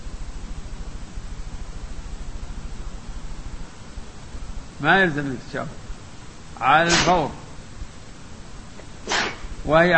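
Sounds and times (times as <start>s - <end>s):
speech: 4.8s - 5.8s, 6.6s - 7.4s, 9.6s - 9.9s
person sneezing: 6.9s - 7.3s, 9.1s - 9.5s.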